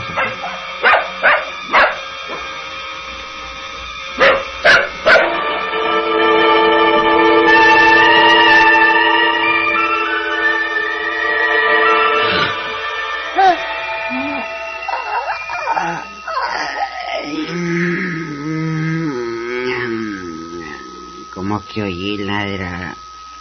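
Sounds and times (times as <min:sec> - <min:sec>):
steady droning hum: 0:00.0 - 0:23.3
dog barking: 0:00.1 - 0:02.0, 0:04.2 - 0:05.4.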